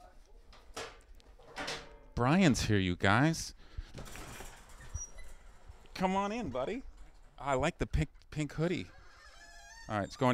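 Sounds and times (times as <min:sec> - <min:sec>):
speech: 0:02.2 - 0:04.1, 0:06.0 - 0:09.0, 0:09.9 - 0:10.3
garage door rattling and sliding open: 0:03.8 - 0:07.7.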